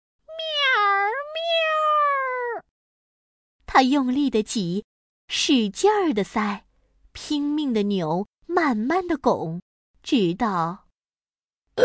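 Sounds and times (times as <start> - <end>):
cat stuck in a doorway yowling meow: 0.3 - 2.7
speech: 3.7 - 10.8.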